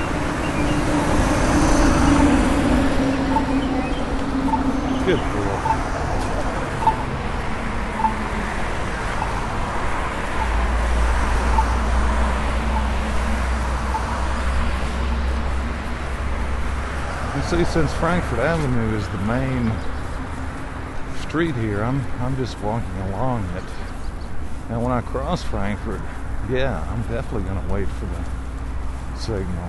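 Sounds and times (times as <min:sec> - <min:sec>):
faint birds: 0:00.0 - 0:29.6
low engine drone: 0:00.0 - 0:29.6
traffic rumble at a crossing: 0:00.0 - 0:29.6
speech: 0:17.6 - 0:20.0, 0:21.3 - 0:23.8, 0:24.7 - 0:28.4, 0:29.2 - 0:29.6.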